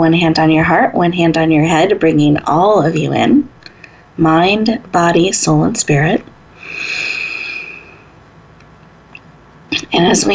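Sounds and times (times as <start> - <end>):
speech: 0.0 - 3.5, 4.2 - 7.0, 9.9 - 10.3
exhaling through pursed lips during a guided breathing exercise: 6.6 - 8.2.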